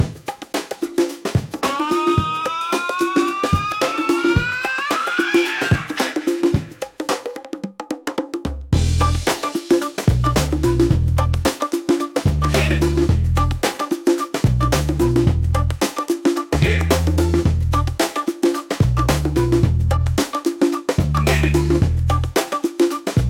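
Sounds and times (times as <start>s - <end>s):
funky free beats: 0.0s - 23.2s.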